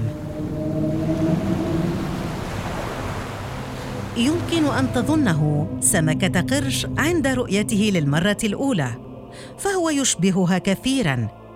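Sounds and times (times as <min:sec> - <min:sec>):
pygmy sperm whale tonal moans: 0:00.0 - 0:07.0
steady underwater rumble and hiss: 0:00.0 - 0:07.6
speech: 0:04.2 - 0:11.4.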